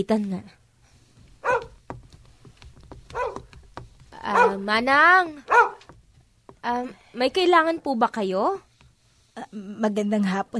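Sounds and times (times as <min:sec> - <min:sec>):
speech: 0:00.0 - 0:00.6, 0:04.3 - 0:05.6, 0:06.6 - 0:08.7, 0:09.4 - 0:10.5
dog barking: 0:01.4 - 0:01.8, 0:03.1 - 0:03.5, 0:04.3 - 0:04.6, 0:05.4 - 0:05.8.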